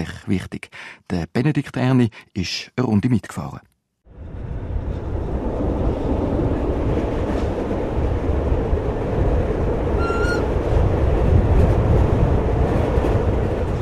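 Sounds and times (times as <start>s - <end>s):
speech: 0.3s - 3.7s
red-and-cream 1980s narrow-gauge train rattling along tracks into the Waldenburg valley: 4.8s - 13.8s
high squeal of train metal: 10.0s - 10.5s.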